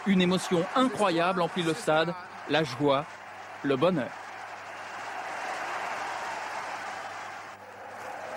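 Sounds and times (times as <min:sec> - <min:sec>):
speech: 0:00.0 - 0:04.2
large stadium crowd cheering and applauding as the French team wins the Davis Cup: 0:00.0 - 0:08.3.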